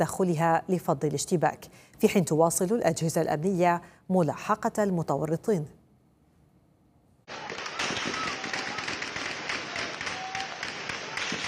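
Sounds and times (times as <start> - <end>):
speech: 0.0 - 5.8
heavy rapid gunfire: 7.3 - 11.4.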